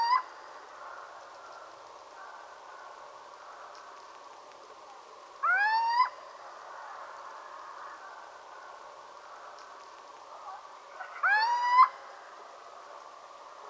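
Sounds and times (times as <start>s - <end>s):
steady background hiss: 0.0s - 13.6s
little owl giving rising mewing calls: 5.4s - 6.2s.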